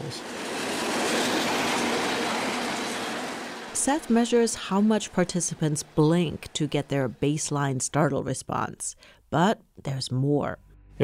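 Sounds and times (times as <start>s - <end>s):
train wheels clattering on rails: 0.0s - 7.2s
loud train rumbling past on tracks: 0.0s - 7.7s
speech: 3.8s - 11.0s.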